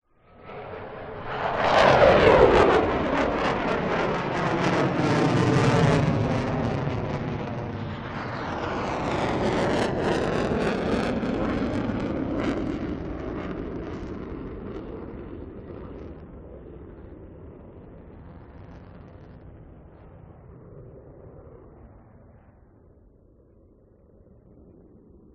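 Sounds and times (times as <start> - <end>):
two F-16 jet fighters passing overhead side by side: 0.1 - 25.3.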